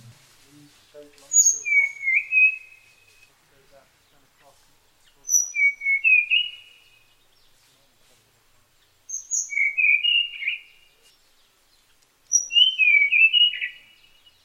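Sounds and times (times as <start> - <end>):
Tanahjampea blue flycatcher song with sweet warbled phrases: 1.0 - 7.9, 8.6 - 14.4.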